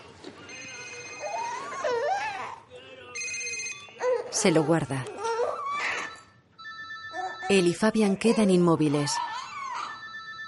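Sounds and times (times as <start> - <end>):
mobile phone ringing with a warbling electronic melody: 0.4 - 1.8, 3.1 - 4.0, 6.0 - 8.2, 9.8 - 10.4
speech: 4.4 - 5.2, 7.5 - 9.3.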